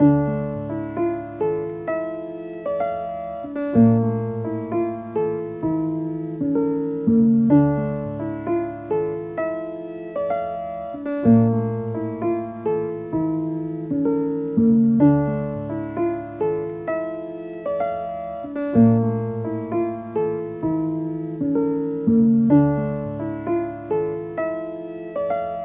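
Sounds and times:
piano melody loop in C# minor: 0:00.0 - 0:25.6.

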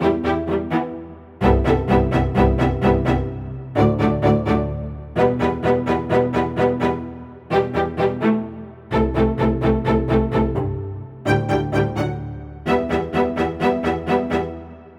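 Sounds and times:
house string loop in E minor: 0:00.0 - 0:14.9.

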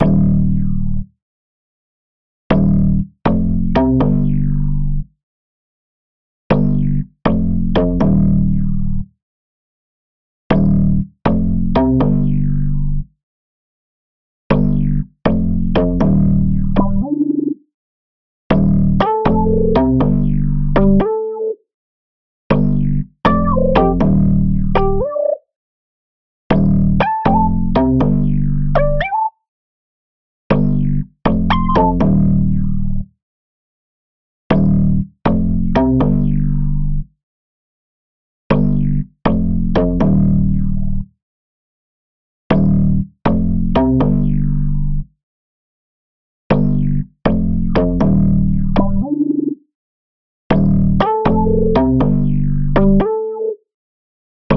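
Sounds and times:
bass in G minor: 0:00.0 - 0:01.1, 0:02.5 - 0:05.2, 0:06.5 - 0:09.2, 0:10.5 - 0:13.2, 0:14.5 - 0:17.6, 0:18.5 - 0:21.5, 0:22.5 - 0:25.4, 0:26.5 - 0:29.4, 0:30.5 - 0:33.2, 0:34.5 - 0:37.2, 0:38.5 - 0:41.2, 0:42.5 - 0:45.2, 0:46.5 - 0:49.6, 0:50.5 - 0:53.5.

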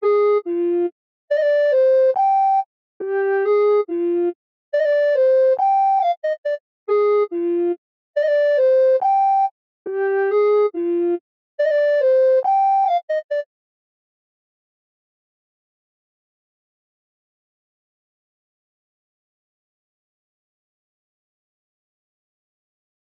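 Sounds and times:
flute loop in C minor at 140 BPM: 0:00.0 - 0:13.5.

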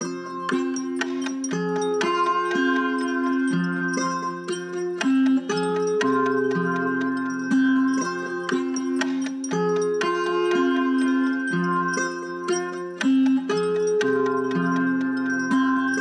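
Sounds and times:
guitar in F minor: 0:00.0 - 0:15.9.

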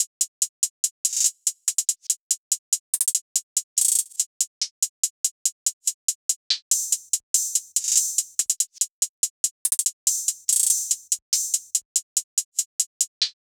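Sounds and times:
hi-hat loop: 0:00.0 - 0:13.4.

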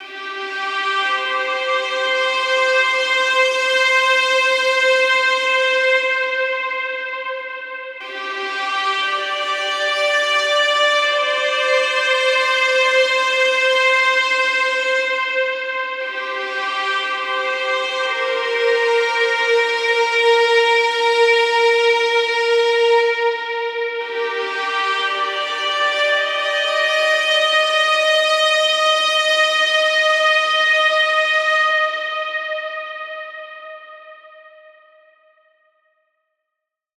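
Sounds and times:
violin in C minor: 0:00.0 - 0:34.2.

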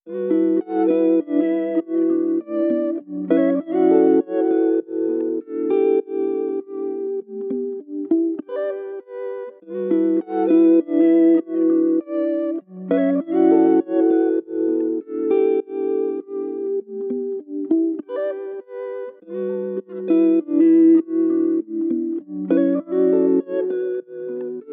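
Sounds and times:
Afrobeats guitar melody in E minor: 0:00.0 - 0:24.7.

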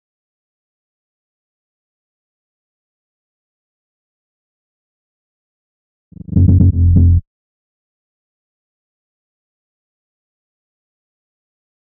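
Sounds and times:
125 BPM A-sharp minor bass fill: 0:06.2 - 0:07.2.

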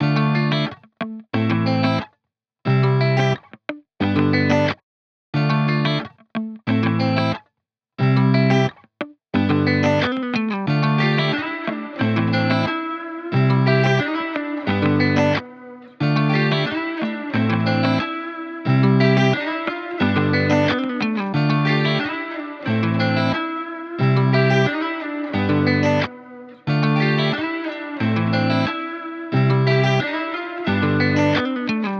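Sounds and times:
guitar playing in A minor at 90 BPM: 0:00.0 - 0:02.1, 0:02.7 - 0:04.8, 0:05.4 - 0:07.4, 0:08.0 - 0:31.9.

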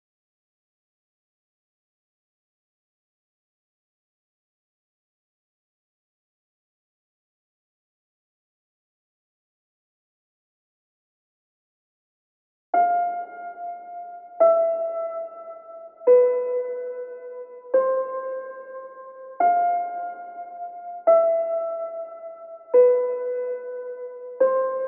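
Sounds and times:
reversed piano melody in A minor: 0:12.8 - 0:24.8.

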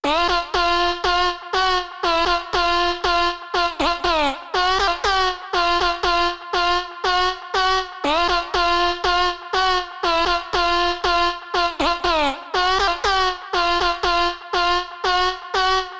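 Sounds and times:
F minor vocal melody loop: 0:00.0 - 0:15.9.

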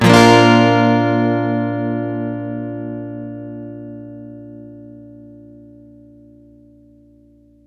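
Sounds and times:
acoustic guitar one shot in C major: 0:00.0 - 0:03.4.

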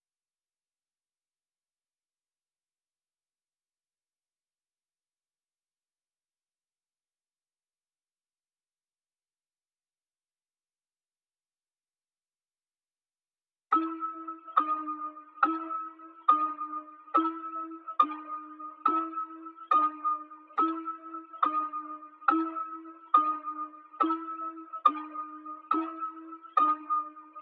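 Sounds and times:
bell melody loop in C sharp minor at 140 BPM: 0:13.7 - 0:27.4.

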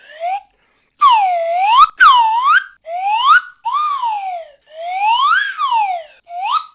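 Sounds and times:
cartoon film whistle: 0:01.0 - 0:04.3, 0:04.9 - 0:06.7.

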